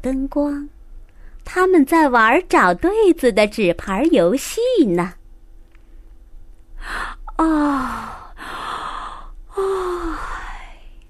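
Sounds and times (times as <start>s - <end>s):
speech: 0.0s - 0.8s, 1.4s - 5.2s, 6.8s - 8.6s
person yawning: 7.2s - 10.7s.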